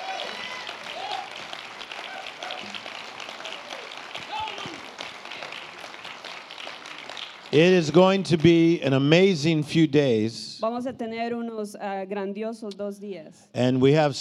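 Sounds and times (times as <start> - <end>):
crowd applauding: 0.0 - 9.3
people cheering and calling out: 0.0 - 9.3
speech: 7.5 - 14.1.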